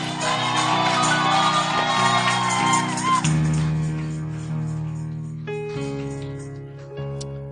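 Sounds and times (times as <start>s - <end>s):
crowd shouting and whooping with joy: 0.0s - 3.7s
steady sustained keyboard chords: 0.0s - 7.5s.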